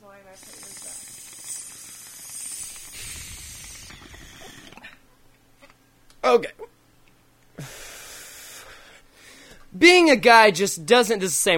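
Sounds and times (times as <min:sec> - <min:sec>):
lighter gas hissing: 0:00.3 - 0:04.9
speech: 0:06.3 - 0:06.6, 0:09.8 - 0:11.5.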